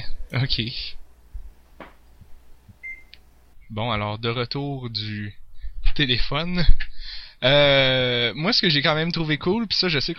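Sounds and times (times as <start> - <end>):
speech: 0.3 - 1.0, 3.7 - 5.4, 6.0 - 10.1
microwave oven beeping as it is stopped: 2.8 - 3.2.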